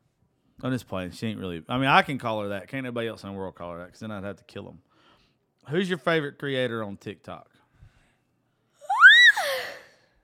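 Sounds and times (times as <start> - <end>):
speech: 0.6 - 4.9, 5.6 - 7.5
high-pitched squeaky yawn: 8.8 - 10.2.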